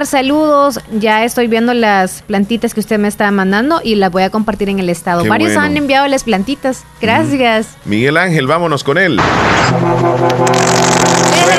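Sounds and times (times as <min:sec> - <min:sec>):
speech: 0:00.0 - 0:11.5
loud deep truck horn blaring: 0:09.6 - 0:11.5.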